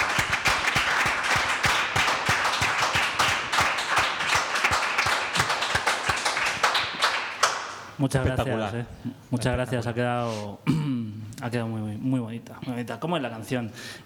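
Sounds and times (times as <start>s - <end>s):
audience applause after a song performance: 0.0s - 7.8s
speech: 8.0s - 14.0s.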